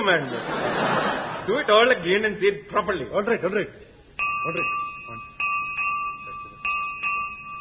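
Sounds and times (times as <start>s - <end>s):
laughter: 0.0s - 1.9s
speech: 0.0s - 3.8s, 4.4s - 5.2s
bell strikes with sustained metallic tone: 4.2s - 7.5s.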